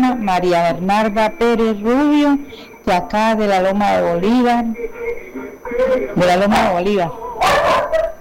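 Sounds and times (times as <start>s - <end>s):
speech: 0.2s - 5.2s, 5.8s - 8.1s
small dog barking and yapping with whiny cries: 6.5s - 8.1s.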